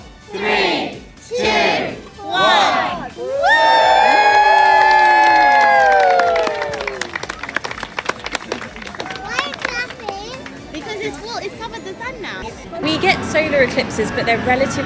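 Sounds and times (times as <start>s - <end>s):
crowd shouting and cheering during an eclipse: 0.0s - 12.2s
sustained high-pitched whoop of many voices: 3.2s - 7.8s
speech: 14.0s - 14.8s.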